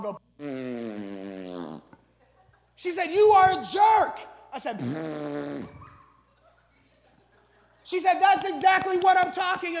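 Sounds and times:
speech: 0:00.0 - 0:00.7, 0:02.8 - 0:05.8, 0:07.9 - 0:09.7
raspberry blown with the lips imitating a fart: 0:00.0 - 0:02.0, 0:04.8 - 0:06.1
laughter: 0:02.0 - 0:02.8, 0:05.7 - 0:09.7.

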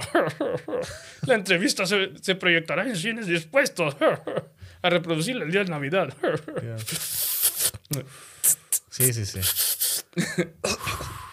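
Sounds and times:
speech: 0:00.1 - 0:11.1
person coughing: 0:10.2 - 0:11.2.

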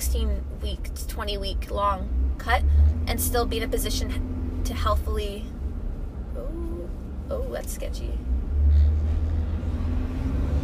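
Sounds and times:
speech: 0:00.1 - 0:05.6, 0:07.3 - 0:08.9
long truck passing on road: 0:02.0 - 0:06.4, 0:08.1 - 0:10.6.

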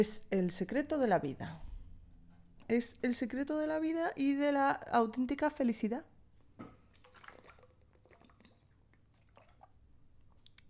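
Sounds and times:
speech: 0:00.0 - 0:01.7, 0:02.7 - 0:06.7
person drinking water noisily with slurping and gulping: 0:06.9 - 0:09.8
small mouth clicks: 0:10.4 - 0:10.6.

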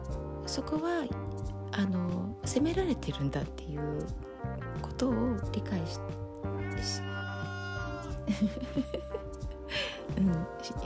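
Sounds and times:
speech: 0:00.5 - 0:06.2, 0:06.8 - 0:07.2, 0:08.3 - 0:09.2, 0:10.2 - 0:10.8
cat meowing for food: 0:06.6 - 0:08.2
laughter: 0:08.2 - 0:09.3.

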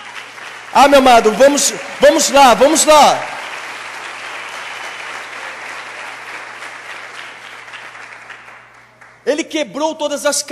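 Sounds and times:
large crowd applauding: 0:00.0 - 0:09.2
speech: 0:00.8 - 0:03.4, 0:09.6 - 0:10.5.

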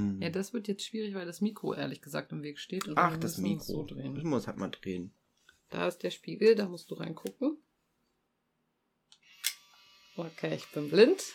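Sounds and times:
speech: 0:00.0 - 0:07.6, 0:10.2 - 0:11.3
instant camera shutter click: 0:09.3 - 0:09.7.

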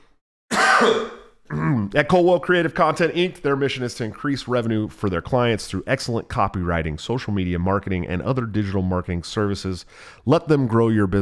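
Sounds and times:
harsh raspy throat clearing: 0:00.5 - 0:01.9
speech: 0:00.8 - 0:11.2.

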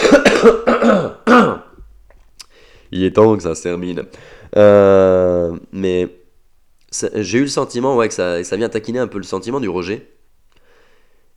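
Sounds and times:
person coughing and clearing throat: 0:00.0 - 0:01.8
speech: 0:00.4 - 0:00.6, 0:02.9 - 0:06.2, 0:06.9 - 0:10.2.

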